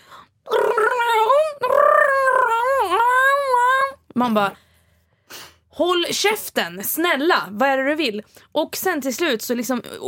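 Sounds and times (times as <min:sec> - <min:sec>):
person vocally imitating the yowl of a female cat in heat: 0:00.4 - 0:04.0
speech: 0:04.2 - 0:04.6, 0:05.8 - 0:10.0.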